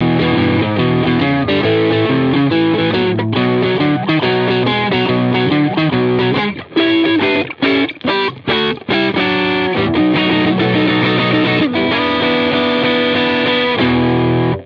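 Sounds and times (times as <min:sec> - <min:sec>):
overdrive distortion: 0:00.0 - 0:14.6.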